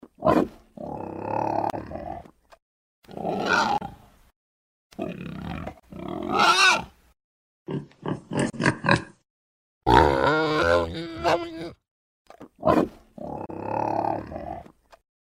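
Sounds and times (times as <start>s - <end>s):
boar on a farm: 0.1s - 2.3s, 3.1s - 4.0s, 5.0s - 6.9s, 7.7s - 9.2s, 9.8s - 11.8s, 12.5s - 14.8s.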